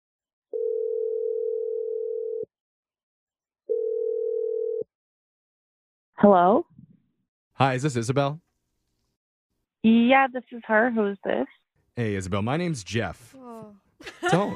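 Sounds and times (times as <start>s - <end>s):
telephone ringback tones: 0.6s - 2.5s, 3.7s - 4.9s
speech: 6.2s - 6.7s, 7.6s - 8.4s, 9.8s - 14.5s
laughter: 14.0s - 14.5s.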